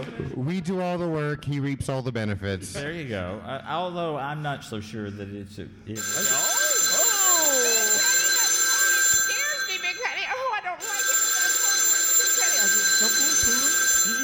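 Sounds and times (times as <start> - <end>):
speech: 0.4 - 6.5
telephone ringing with an electronic trill: 6.0 - 14.2.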